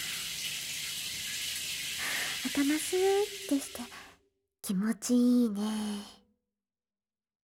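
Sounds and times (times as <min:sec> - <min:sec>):
shower water rinsing hair: 0:00.0 - 0:04.1
speech: 0:02.5 - 0:04.0, 0:04.7 - 0:06.2.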